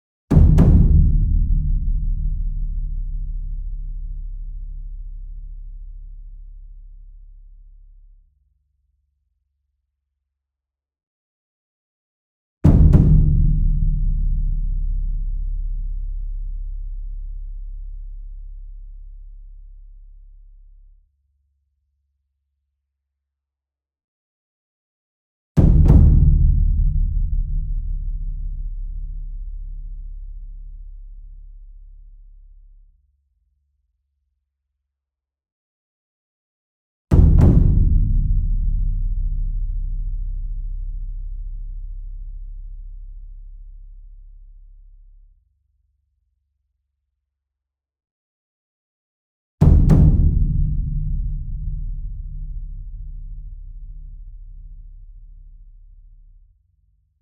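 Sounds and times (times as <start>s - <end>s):
taiko drum: 0.3s - 2.6s, 12.7s - 14.7s, 25.6s - 28.0s, 37.1s - 39.2s, 49.6s - 53.4s
concert bass drum: 0.3s - 4.5s, 12.7s - 15.8s, 25.6s - 29.5s, 37.1s - 41.9s, 49.6s - 55.3s.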